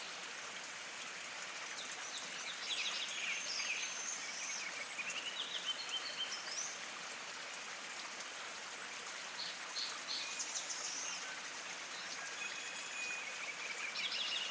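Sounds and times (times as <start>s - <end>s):
hot spring water flowing: 0.0s - 14.4s
songbirds singing: 1.7s - 6.8s, 9.3s - 14.4s.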